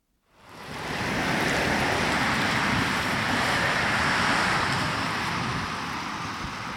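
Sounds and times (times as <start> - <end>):
X2000 high-speed train whooshing past station: 0.3 - 6.7.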